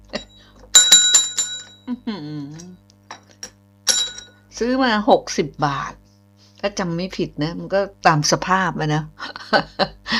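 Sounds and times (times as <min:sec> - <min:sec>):
small bell jingling: 0:00.8 - 0:01.8
speech: 0:01.9 - 0:02.8, 0:04.6 - 0:06.0, 0:06.6 - 0:10.0.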